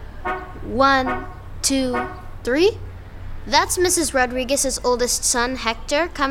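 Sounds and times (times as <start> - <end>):
car horn beeping: 0.0 - 2.4
low hum: 0.0 - 6.3
speech: 0.6 - 6.3.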